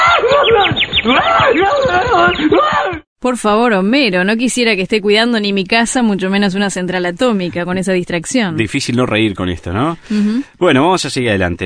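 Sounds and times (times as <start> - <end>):
small bird chirping: 0.4 - 2.6
speech: 3.2 - 11.6.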